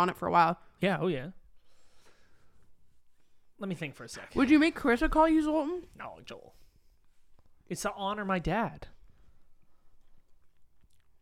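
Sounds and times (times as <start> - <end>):
speech: 0.0 - 1.4, 3.6 - 6.6, 7.7 - 9.0
person chewing and biting into a meat stick: 9.6 - 11.2.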